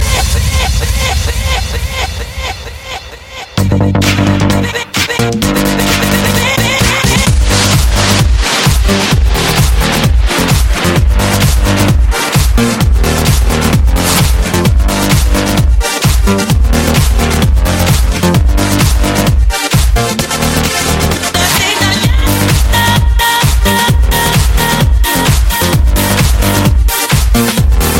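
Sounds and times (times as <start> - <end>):
electronic background music: 0.0 - 27.9.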